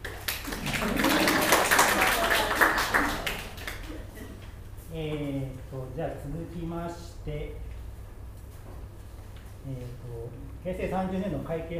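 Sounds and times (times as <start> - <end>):
group of people at a meeting applauding after a vote: 0.0 - 4.2
speech: 6.2 - 7.7, 9.6 - 11.7.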